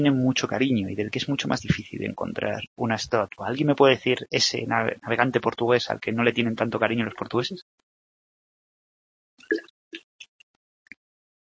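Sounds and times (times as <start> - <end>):
speech: 0.0 - 7.8
person drinking water: 9.4 - 10.1.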